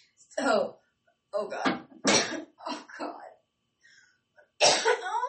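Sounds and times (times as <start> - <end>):
speech: 0.4 - 0.8, 1.4 - 2.2
coughing fit: 2.0 - 2.6, 4.6 - 5.1.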